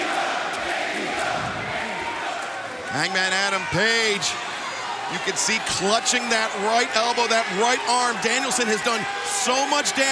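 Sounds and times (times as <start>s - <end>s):
large wrestling arena crowd cheering and roaring: 0.0s - 10.1s
speech: 2.9s - 4.5s, 5.1s - 10.1s.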